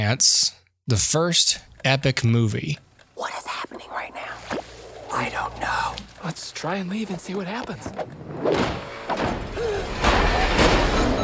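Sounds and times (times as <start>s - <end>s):
speech: 0.1s - 2.8s, 5.2s - 10.0s
booming knocks and rattles: 8.2s - 11.2s
heavy door slamming shut: 8.4s - 11.2s.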